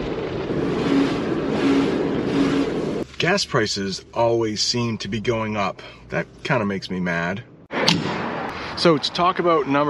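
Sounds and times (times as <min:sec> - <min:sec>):
automatic car wash machinery hum: 0:00.1 - 0:04.8
automatic car wash spraying water: 0:00.4 - 0:03.4
speech: 0:03.2 - 0:08.1, 0:08.8 - 0:09.8.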